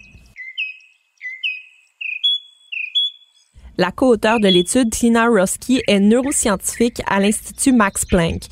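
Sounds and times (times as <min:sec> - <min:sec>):
mockingbird singing whistled two-note phrases: 0:00.0 - 0:03.5, 0:04.3 - 0:04.8
speech: 0:03.8 - 0:08.5.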